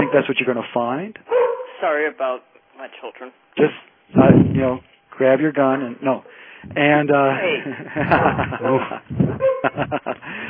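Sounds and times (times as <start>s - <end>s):
dog wearing a bark collar barking: 0.0s - 0.3s, 1.3s - 1.8s, 9.4s - 9.8s
speech: 0.1s - 10.4s
laughter: 7.3s - 10.4s.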